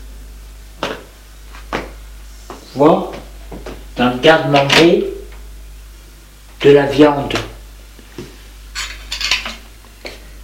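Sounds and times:
speech: 2.8s - 3.2s, 4.0s - 5.1s, 6.6s - 7.5s
cutlery sounds: 8.8s - 9.6s
plate clinking as set down on the floor: 8.8s - 9.6s.

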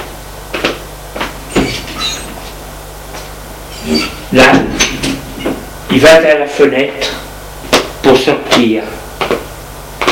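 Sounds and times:
pantry door creaking open: 1.5s - 2.5s, 3.7s - 5.6s
speech: 3.8s - 4.7s, 6.0s - 7.1s, 8.0s - 9.0s.

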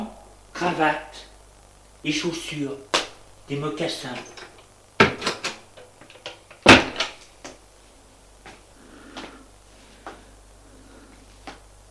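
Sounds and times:
speech: 0.6s - 1.3s, 2.0s - 2.9s, 3.5s - 4.5s
wardrobe door opening and closing: 4.2s - 7.2s
soft rustle: 7.7s - 11.7s.

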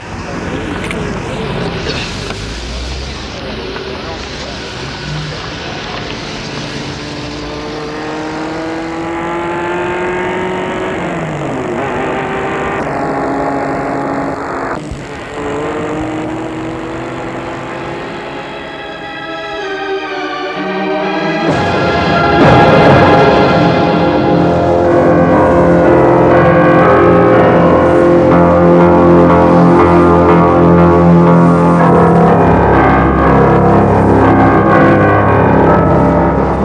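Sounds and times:
car engine accelerating: 0.0s - 36.6s
constant rushing hum: 0.0s - 36.6s.

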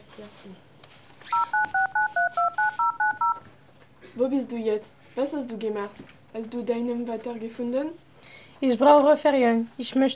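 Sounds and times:
speech: 0.2s - 1.8s, 4.2s - 10.1s
telephone keypad tones dialing a number: 1.3s - 3.4s.

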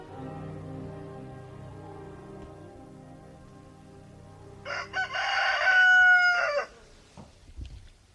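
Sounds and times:
rooster crowing: 4.6s - 6.9s.

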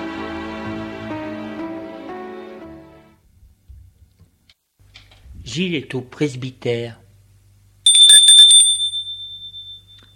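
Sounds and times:
speech: 5.5s - 7.0s
doorbell ringing at a presbytery with metallic trill: 7.9s - 10.1s.

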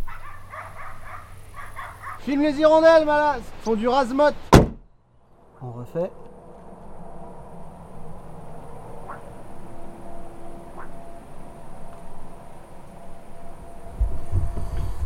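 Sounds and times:
distant dog barking: 0.0s - 2.3s, 8.9s - 9.5s, 10.6s - 11.4s
heavy truck passing far away on the national road: 0.0s - 15.0s
speech: 2.3s - 4.5s, 5.6s - 6.4s.

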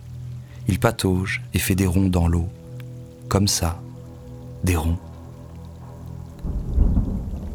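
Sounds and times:
steady rain in a thunderstorm: 0.0s - 7.5s
speech: 0.7s - 2.6s, 3.3s - 3.9s, 4.6s - 5.1s
deep rumble of thunder: 3.1s - 7.5s.

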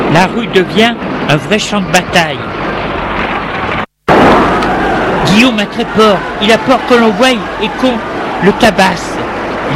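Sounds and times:
speech: 0.2s - 2.5s, 5.4s - 9.7s
gas explosion: 3.7s - 5.3s.

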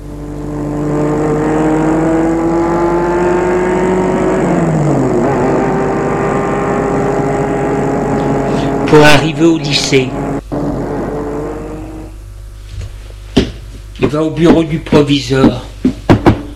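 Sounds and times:
car engine shifting gear as the car pulls away: 0.0s - 12.2s
speech: 8.9s - 10.2s, 14.0s - 15.6s.

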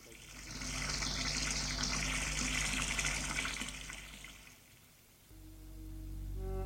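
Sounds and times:
shower spraying water: 0.0s - 4.8s.

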